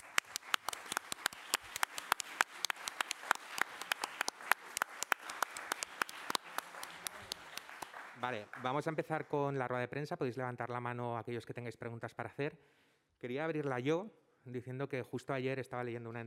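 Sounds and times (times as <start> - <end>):
audience applause: 0.0 - 9.3
speech: 8.2 - 16.2.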